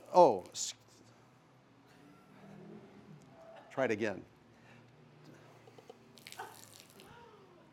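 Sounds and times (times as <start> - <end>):
speech: 0.1 - 0.8, 3.8 - 4.3
water pouring and overflowing into a puddle: 6.2 - 7.1.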